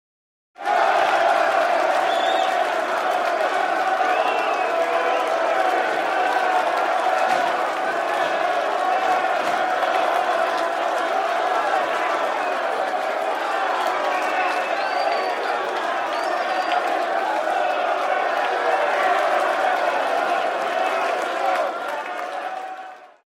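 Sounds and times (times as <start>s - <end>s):
football match spectators cheering: 0.6s - 23.2s
football match spectators whistling: 1.9s - 2.7s, 3.8s - 5.4s, 12.4s - 12.7s, 13.7s - 17.0s.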